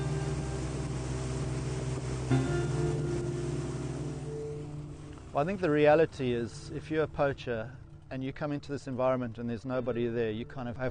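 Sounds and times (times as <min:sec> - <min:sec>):
rushing river water: 0:00.0 - 0:05.9
patrol boat engine droning on a river: 0:00.0 - 0:08.1
speech: 0:02.3 - 0:02.6, 0:05.4 - 0:10.8.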